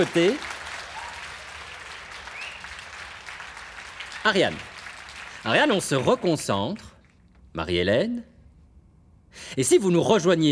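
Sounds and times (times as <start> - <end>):
speech: 0.0 - 0.5, 4.2 - 4.7, 5.4 - 6.9, 7.6 - 8.3, 9.3 - 10.5
audience applause: 0.0 - 6.3.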